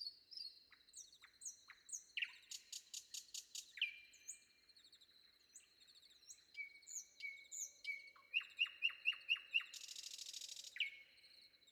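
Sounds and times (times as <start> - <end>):
common nightingale singing before dawn: 6.6 - 11.0.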